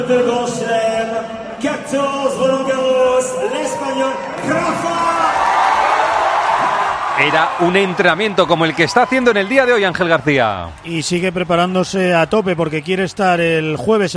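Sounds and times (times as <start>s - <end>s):
speech: 0.0s - 0.9s, 1.9s - 5.4s, 7.2s - 14.1s
tennis crowd cheering a player arriving on court: 2.2s - 13.4s
tennis crowd whooping and chant-like shouting: 3.1s - 11.4s.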